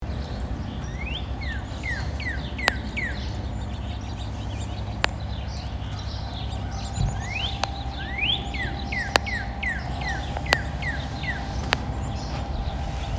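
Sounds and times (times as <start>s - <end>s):
steady low rumble: 0.0s - 13.1s
two northern cardinals singing in Salem Massachusetts: 0.0s - 13.1s
sharp clicks: 2.6s - 3.1s, 4.7s - 6.1s, 6.7s - 12.5s.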